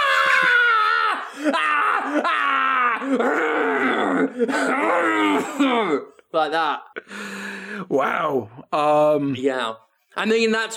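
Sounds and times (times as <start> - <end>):
person imitating a teacher screaming at a child in class: 0.0 - 6.1
speech: 1.4 - 2.4, 3.1 - 3.6, 4.3 - 10.7.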